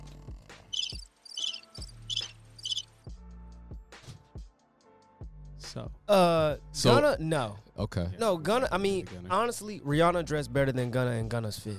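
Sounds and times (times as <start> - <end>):
crickets chirping: 0.7 - 2.8
speech: 5.8 - 11.7.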